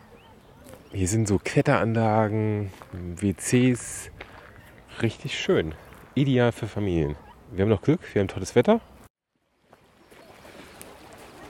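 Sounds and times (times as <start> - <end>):
speech: 0.9 - 4.2, 5.0 - 8.9
small brook flowing through a large playground park in fine weather: 9.3 - 11.4.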